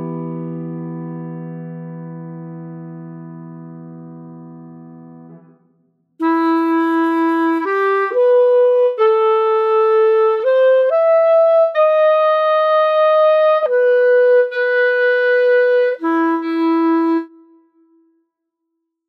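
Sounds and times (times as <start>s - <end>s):
clarinet playing in E minor: 6.2s - 18.0s.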